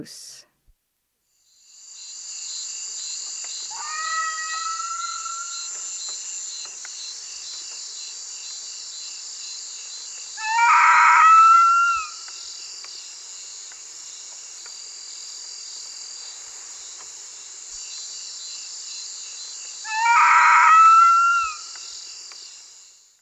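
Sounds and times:
crab-eating fox calling: 3.7 - 5.8, 10.4 - 12.4, 19.8 - 21.9.

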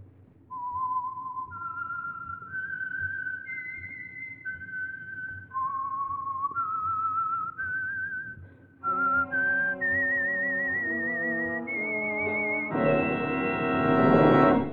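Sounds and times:
lone whistled theme melody: 0.5 - 14.7
low orchestral backing: 8.9 - 14.7.

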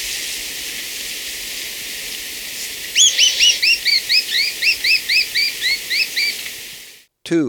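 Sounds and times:
black-crested tit-tyrant uttering high sharp upslurred notes in Ecuador: 2.9 - 7.0
speech: 7.3 - 7.4.

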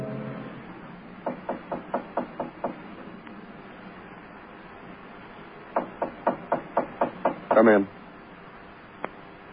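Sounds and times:
brisk knocking on a door: 1.2 - 2.9, 5.7 - 7.8.

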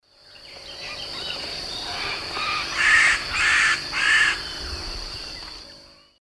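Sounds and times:
Piculus chrysochloros calling in South American Eastern Lowlands: 0.6 - 4.7.

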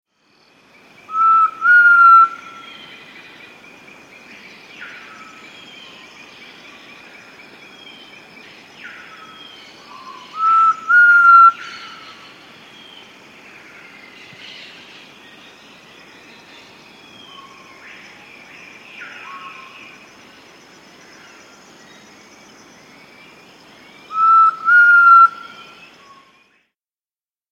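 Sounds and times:
Elusive Antpitta calling in South America: 1.1 - 2.8, 9.9 - 12.2, 24.1 - 25.8.

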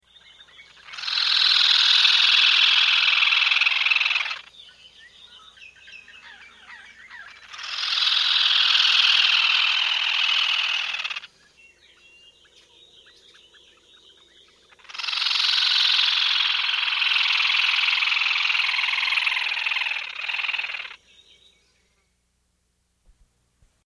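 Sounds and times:
White-throated crake calling in South America: 0.6 - 11.3, 14.1 - 21.0.

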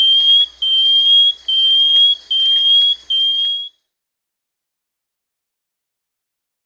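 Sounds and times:
banded antwren singing thin whistled notes in Peru: 0.0 - 3.8.

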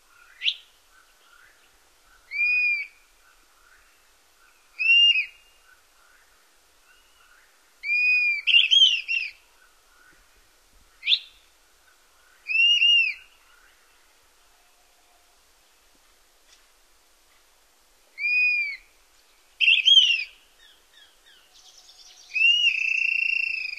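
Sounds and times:
dusky-capped flycatcher singing in North America: 0.1 - 15.9, 18.2 - 23.7.

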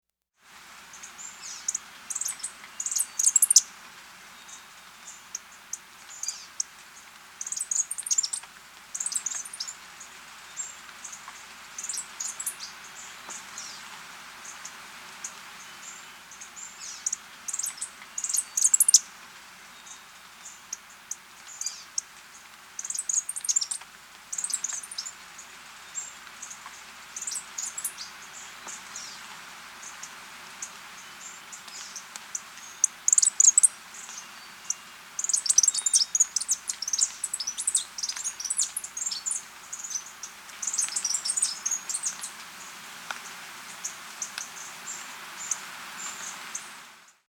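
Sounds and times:
bird calls in the Costa Rican cloud forest: 0.9 - 3.7, 4.4 - 19.1, 19.7 - 46.8.

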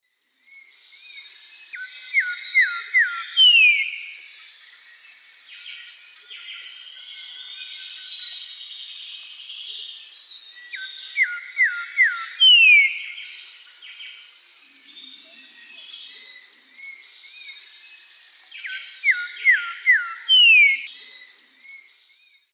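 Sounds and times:
Saltator coerulescens song in S. America Eastern Lowlands: 0.2 - 22.5.

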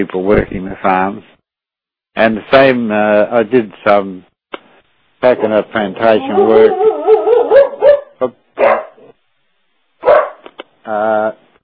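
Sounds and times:
speech: 0.0 - 1.3, 2.2 - 4.3, 5.2 - 7.0, 8.2 - 8.8, 10.9 - 11.4
dog giving a long tonal yelp: 5.4 - 9.1, 10.0 - 10.4
dog barking: 6.2 - 9.2, 10.0 - 10.5.

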